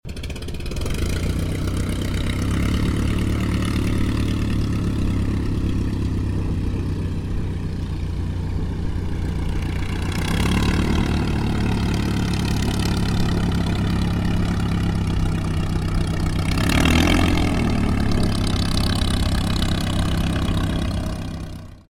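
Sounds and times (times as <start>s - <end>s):
de Havilland DH82A Tiger Moth aircraft taxiing: 0.1s - 21.8s.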